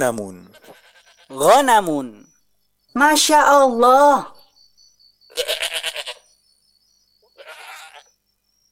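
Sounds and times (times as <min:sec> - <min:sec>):
speech: 0:00.0 - 0:00.5, 0:01.3 - 0:02.3, 0:02.9 - 0:04.4
faint high steady tone: 0:00.0 - 0:08.7
goat bleating: 0:00.4 - 0:01.5, 0:05.3 - 0:06.2, 0:07.3 - 0:08.1.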